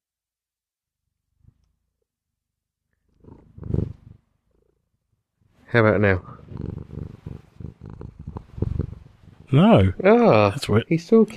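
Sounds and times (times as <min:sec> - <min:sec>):
cat purring: 0:03.0 - 0:05.0, 0:05.7 - 0:10.4
speech: 0:05.7 - 0:06.8, 0:09.5 - 0:11.3.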